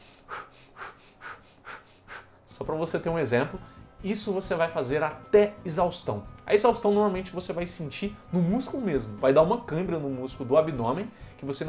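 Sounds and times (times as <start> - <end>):
short forceful breaths of a breathing exercise: 0.0 - 2.5
speech: 2.6 - 11.6.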